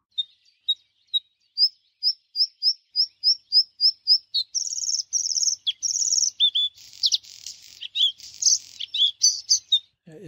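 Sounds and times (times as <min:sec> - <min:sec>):
bluethroat singing crackling buzzy phrases: 0:00.0 - 0:10.2.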